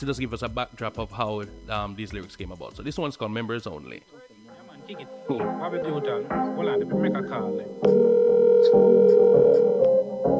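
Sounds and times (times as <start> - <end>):
speech: 0.0 - 4.3, 4.9 - 10.3
phone line ringing tone during a call: 4.1 - 10.3.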